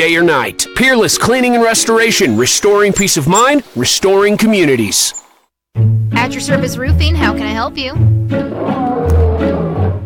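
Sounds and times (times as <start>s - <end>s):
speech: 0.0s - 5.2s, 5.8s - 8.8s
lion roaring: 8.4s - 10.0s.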